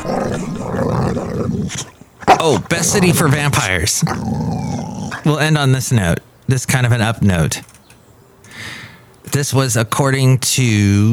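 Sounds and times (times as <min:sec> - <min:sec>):
dog growling in a low rumbling snarl: 0:00.0 - 0:05.4
speech: 0:01.7 - 0:07.7, 0:09.3 - 0:11.1.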